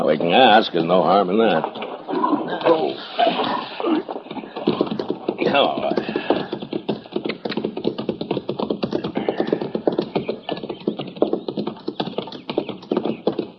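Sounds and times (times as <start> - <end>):
speech: 0.0 - 4.2, 5.4 - 6.0
many horses clip-clopping: 0.0 - 13.5
horse whinnying: 1.6 - 6.7.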